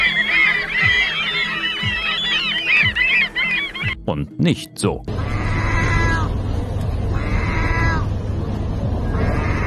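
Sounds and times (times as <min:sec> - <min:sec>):
gull in Turkey giving cat-like meowing calls: 0:00.0 - 0:04.0, 0:05.1 - 0:06.3, 0:07.1 - 0:08.1, 0:09.1 - 0:09.6
speech: 0:04.1 - 0:05.2
constant low rumble of noise: 0:05.0 - 0:09.6.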